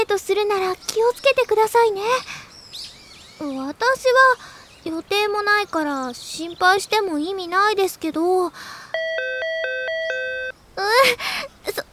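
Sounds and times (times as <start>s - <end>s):
speech: 0.0s - 2.4s, 3.4s - 9.5s, 10.8s - 11.9s
bright electronic ding-dong chime at a shrine: 9.0s - 10.5s.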